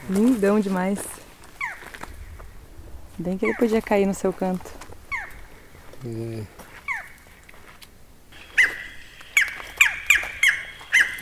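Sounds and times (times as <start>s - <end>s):
speech: 0.1s - 1.2s, 3.2s - 4.8s, 6.0s - 6.6s
barred forest-falcon yelping calls answering electronic playback: 1.6s - 1.9s, 3.3s - 3.8s, 5.1s - 5.5s, 6.8s - 7.3s, 8.4s - 11.2s
faint bird call: 6.8s - 7.4s, 8.4s - 11.2s.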